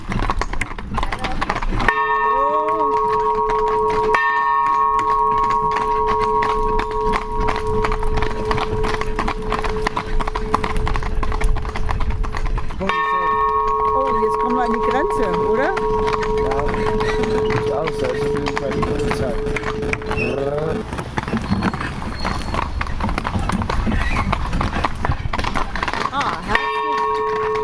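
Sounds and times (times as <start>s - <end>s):
horse hooves clip-clopping on pavement: 0.0s - 27.6s
horse-drawn carriages rolling: 0.0s - 27.6s
bells ringing on horse-drawn carriages: 1.8s - 11.9s, 12.8s - 20.9s, 26.5s - 27.6s.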